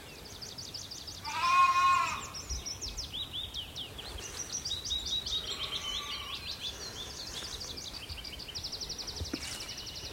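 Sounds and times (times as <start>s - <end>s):
birdsong chirping and trilling: 0.0s - 10.1s
sheep bleating on an open hillside: 1.2s - 2.3s.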